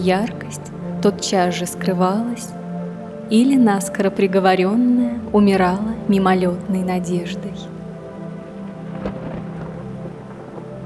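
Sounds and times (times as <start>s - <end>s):
speech: 0.0s - 2.6s, 3.3s - 7.8s
heavy downpour: 7.7s - 10.8s
low rolling thunder: 8.4s - 10.8s.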